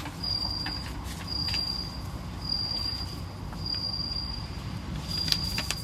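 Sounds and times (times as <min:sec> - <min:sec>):
bell cricket chirping in high thin trills: 0:00.2 - 0:05.6.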